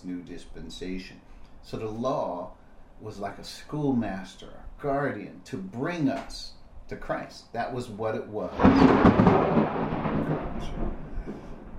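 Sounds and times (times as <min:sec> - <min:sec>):
speech: 0:00.1 - 0:11.5
loud deep thunder rumble from a storm: 0:08.4 - 0:11.7.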